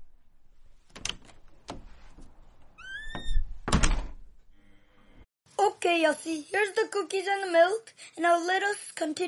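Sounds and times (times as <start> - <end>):
door opening and closing: 0.8 - 4.6
solid door closing thud with a rattle: 0.9 - 4.3
rising squeaky door hinge creak: 2.8 - 3.6
speech: 5.8 - 9.2.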